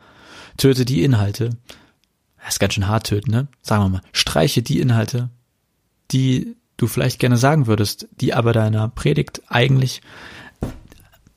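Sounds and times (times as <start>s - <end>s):
speech: 0.6s - 1.8s, 2.5s - 5.4s, 6.1s - 10.8s
dull thump of something bumping against a table: 10.6s - 11.0s.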